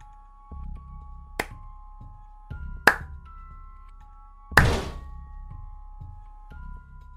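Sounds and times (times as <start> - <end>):
sharp handclaps: 1.4 - 1.6, 2.9 - 3.2
art-room door struck hard by something: 4.6 - 5.1.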